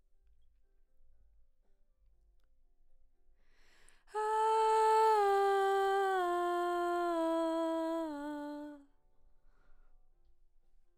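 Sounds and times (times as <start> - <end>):
background vocals: 4.1 - 8.8.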